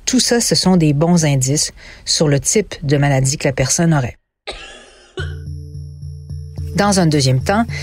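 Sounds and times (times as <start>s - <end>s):
speech: 0.1s - 4.2s, 6.8s - 7.8s
harsh human coughs: 4.5s - 5.5s
steady low electronic hum: 5.2s - 7.8s.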